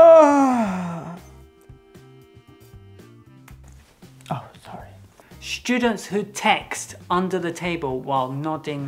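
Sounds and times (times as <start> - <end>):
loud exaggerated yawn: 0.0 - 1.3
speech: 5.5 - 8.8.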